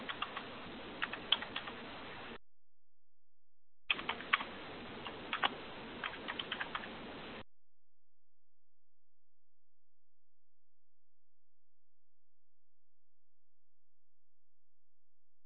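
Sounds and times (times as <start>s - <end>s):
computer keyboard typing: 0.0s - 1.8s, 3.9s - 6.9s.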